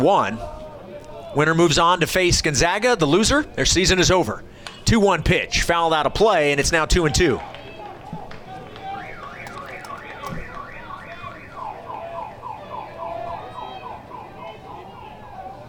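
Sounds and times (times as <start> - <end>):
speech: 0.0 - 0.6, 1.3 - 7.5
noisy baseball game crowd: 0.0 - 15.6
car alarm sound effect over baseball stadium speakers: 8.9 - 15.0.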